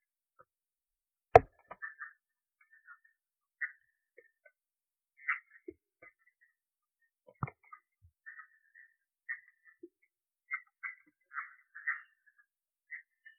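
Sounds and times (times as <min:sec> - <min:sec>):
red-eyed tree frog Agalychnis callidryas chucks and clucks: 0:01.4 - 0:04.6, 0:05.2 - 0:06.6, 0:07.3 - 0:13.3.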